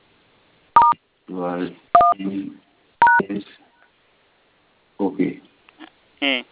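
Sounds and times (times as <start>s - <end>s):
telephone keypad DTMF tone: 0.8s - 1.0s, 2.0s - 2.2s, 3.0s - 3.2s
speech: 1.3s - 3.6s, 5.0s - 5.5s, 6.2s - 6.5s.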